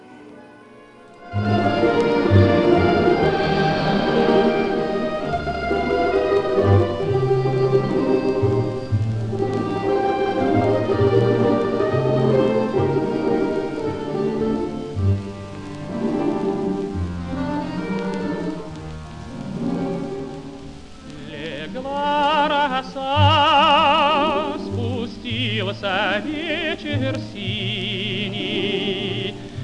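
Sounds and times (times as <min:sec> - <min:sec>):
instrumental introduction of a Soviet song recording by a melodic ensemble: 0:00.0 - 0:29.6.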